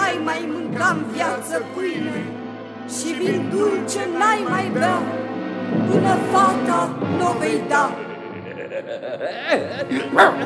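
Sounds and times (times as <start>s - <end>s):
speech: 0.2s - 8.0s, 8.7s - 10.4s
laughter: 8.2s - 10.4s
person imitating a little dog barking: 9.4s - 10.4s.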